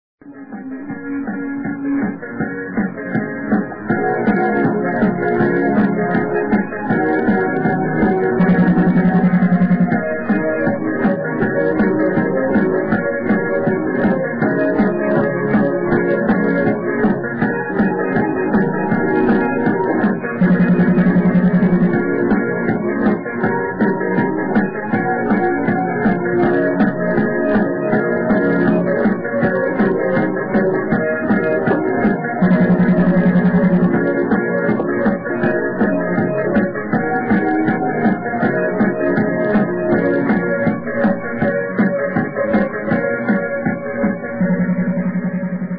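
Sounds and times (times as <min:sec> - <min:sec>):
batida drum beat: 0:00.6 - 0:45.7.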